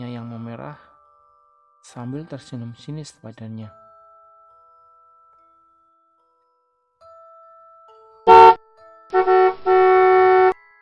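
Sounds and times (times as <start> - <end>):
speech: 0.6 - 0.9, 1.8 - 3.8
car horn honking: 8.3 - 8.6, 9.2 - 10.6.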